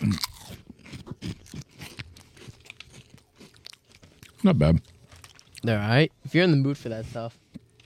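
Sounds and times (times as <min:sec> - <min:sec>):
chewing a crunchy pretzel-like snack: 0:00.0 - 0:05.7
speech: 0:04.4 - 0:04.9, 0:05.6 - 0:07.4.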